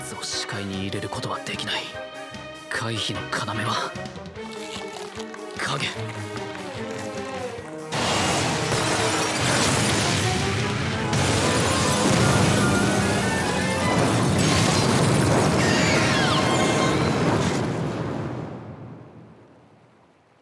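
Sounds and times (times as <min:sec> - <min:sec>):
speech: 0:00.2 - 0:02.2, 0:02.8 - 0:04.2, 0:05.7 - 0:06.4
backdraft explosion in a burning building: 0:07.9 - 0:19.3.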